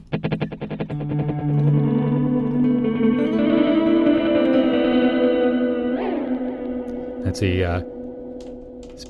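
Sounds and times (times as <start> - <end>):
electric guitar note echoes from a delay pedal: 0.2 - 9.0
speech: 1.0 - 1.6, 7.4 - 8.0
thick shimmering wash of sustained tones with a long reverberant tail: 1.8 - 8.8.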